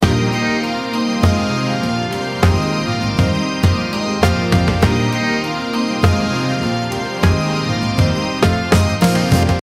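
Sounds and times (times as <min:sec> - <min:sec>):
wedding music: 0:00.0 - 0:09.6.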